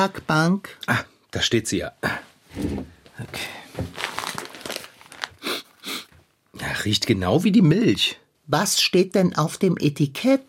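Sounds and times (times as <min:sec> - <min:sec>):
speech: 0:00.0 - 0:04.0, 0:06.8 - 0:10.4
small plastic bag of cinnamon crinkling as it is handled: 0:03.8 - 0:05.7.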